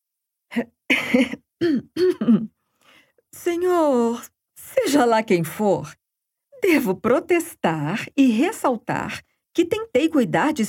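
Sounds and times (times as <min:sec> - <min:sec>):
speech: 0:00.5 - 0:02.5, 0:03.4 - 0:06.0, 0:06.6 - 0:10.6
person coughing to disguise a laugh: 0:00.9 - 0:02.6.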